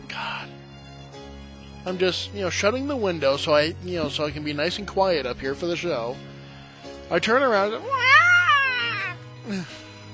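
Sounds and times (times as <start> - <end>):
speech: 1.8 - 6.3, 7.1 - 8.0, 9.5 - 9.8
stepped-on cat yowling in pain: 7.8 - 9.2.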